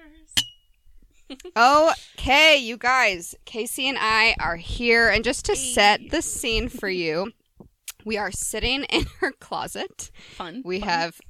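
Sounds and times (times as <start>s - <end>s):
wine glasses clinking in a toast: 0.4s - 0.7s
speech: 1.3s - 7.4s, 8.0s - 11.2s.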